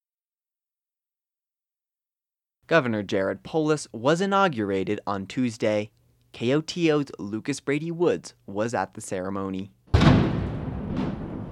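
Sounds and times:
speech: 0:02.7 - 0:09.8
ceremonial cannon firing blanks at the State House in Colorado: 0:09.9 - 0:11.5.

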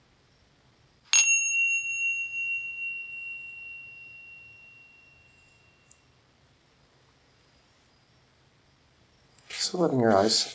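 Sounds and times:
meditation bell ringing during a guided meditation: 0:01.1 - 0:06.2
speech: 0:09.7 - 0:10.5.

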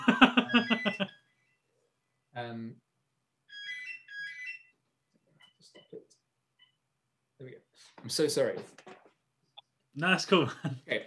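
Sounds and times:
house phone ringing with electronic trills: 0:00.2 - 0:01.3, 0:03.5 - 0:04.8
speech: 0:00.5 - 0:01.2, 0:02.4 - 0:02.8, 0:07.4 - 0:09.0, 0:10.0 - 0:11.0.

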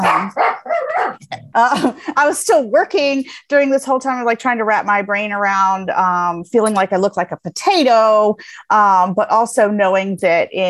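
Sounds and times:
dogs barking: 0:00.0 - 0:01.2
speech: 0:01.6 - 0:10.6.

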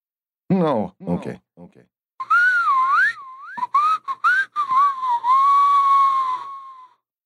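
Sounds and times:
speech: 0:00.6 - 0:02.0
person whistling a wavering sliding tune: 0:02.2 - 0:07.0.

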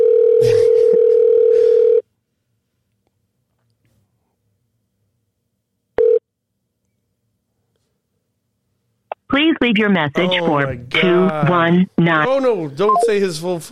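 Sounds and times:
telephone ringing tone on an outgoing call: 0:00.0 - 0:02.0, 0:06.0 - 0:06.2
speech: 0:09.7 - 0:13.6.

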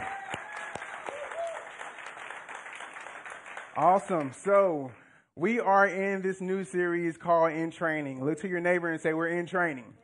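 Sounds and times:
cheering whistles: 0:00.0 - 0:01.8
audience clapping: 0:00.0 - 0:05.0
speech: 0:03.8 - 0:10.0.

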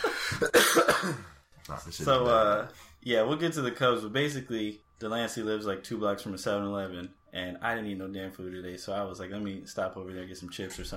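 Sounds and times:
harsh coughing: 0:00.0 - 0:01.4
speech: 0:00.3 - 0:10.9.

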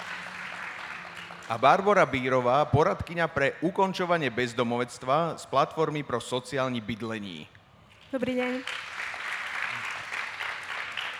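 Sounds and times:
audience applause as guests are introduced on a stage: 0:00.0 - 0:02.6, 0:08.5 - 0:11.1
speech: 0:01.5 - 0:08.9.

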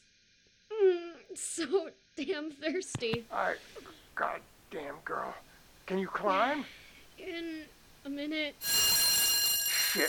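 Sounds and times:
speech: 0:01.4 - 0:09.0
fire alarm ringing: 0:08.6 - 0:10.0.

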